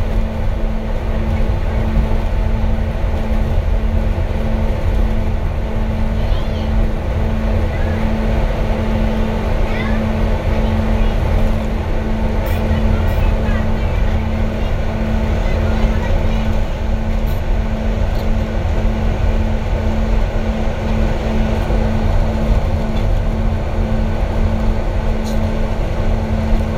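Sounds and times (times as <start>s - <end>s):
loud bus engine rumble with humming drone: 0.0s - 26.7s
faint voices inside a bus: 5.7s - 23.2s.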